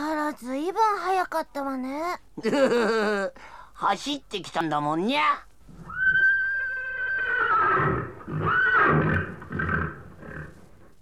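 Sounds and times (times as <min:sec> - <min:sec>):
speech: 0:00.3 - 0:00.6, 0:01.2 - 0:05.5
horse neighing: 0:05.8 - 0:10.8
horse snorting: 0:07.0 - 0:10.9.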